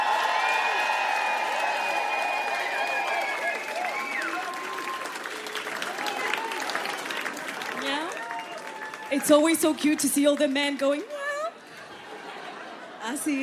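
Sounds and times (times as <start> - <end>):
shouts and whoops: 0.0 - 7.2, 7.9 - 9.3
crowd clapping at a live show: 0.0 - 12.8
speech: 9.2 - 11.1, 13.1 - 13.4
laughter: 11.6 - 13.4.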